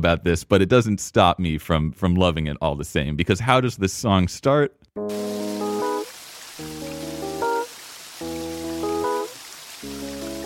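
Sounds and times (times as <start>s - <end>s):
speech: 0.0s - 5.6s
steady hiss of rain or flowing water: 5.1s - 10.4s.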